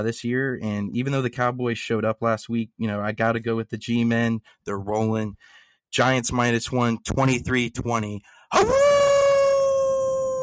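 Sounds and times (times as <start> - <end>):
speech: 0.0 - 9.0
wolf howl sound effect: 8.5 - 10.4.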